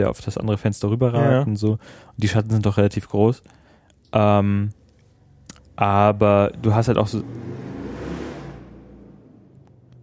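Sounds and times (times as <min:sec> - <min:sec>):
speech: 0:00.0 - 0:04.8, 0:05.8 - 0:07.7
motorcycle engine revving loudly: 0:06.4 - 0:10.0.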